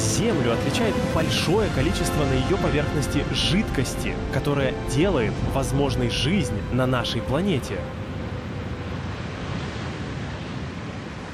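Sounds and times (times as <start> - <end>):
steady dense roar of ocean surf: 0.0 - 11.3
speech: 0.2 - 8.0.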